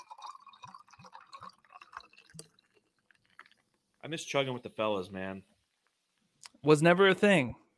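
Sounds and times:
ginger beer poured into a copper mug: 0:00.0 - 0:06.1
speech: 0:04.0 - 0:05.5, 0:06.6 - 0:07.6.

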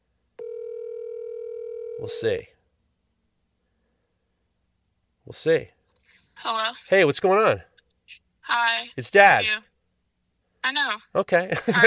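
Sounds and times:
electronic ringback tone from an outgoing phone call: 0:00.4 - 0:02.2
speech: 0:02.0 - 0:02.5, 0:05.3 - 0:05.8, 0:06.4 - 0:07.7, 0:08.5 - 0:09.7, 0:10.6 - 0:11.8.

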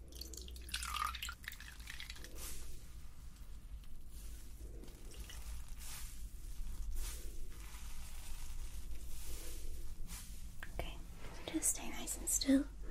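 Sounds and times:
water dripping: 0:00.0 - 0:04.1, 0:04.8 - 0:06.0
sponge dampened in a small bowl of water: 0:00.0 - 0:10.6
speech: 0:11.6 - 0:12.8.

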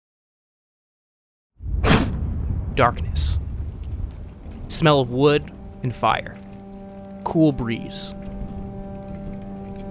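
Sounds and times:
constant low droning hum: 0:02.2 - 0:09.8
steady rain pattering: 0:02.2 - 0:09.8
speech: 0:02.8 - 0:03.4, 0:04.7 - 0:06.4, 0:07.2 - 0:08.2
rain dripping from trees: 0:03.6 - 0:09.8.

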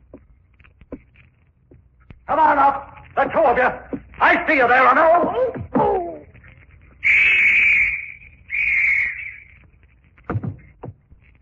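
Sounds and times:
speech: 0:02.3 - 0:05.8
police whistle blasts at a port wharf: 0:07.0 - 0:09.5.

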